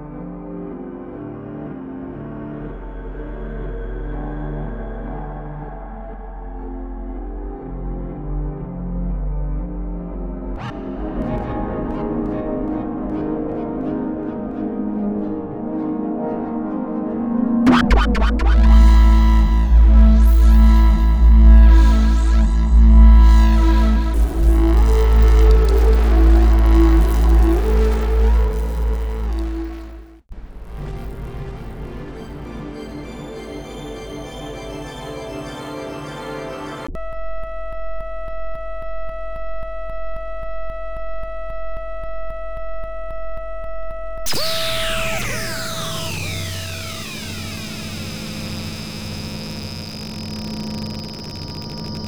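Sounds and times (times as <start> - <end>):
synth wail: 17.7 - 36.9, 44.3 - 52.0.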